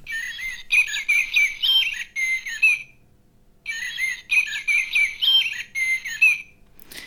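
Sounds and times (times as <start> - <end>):
recorded blackbird song from a plush toy: 0.1 - 3.0, 3.6 - 6.6.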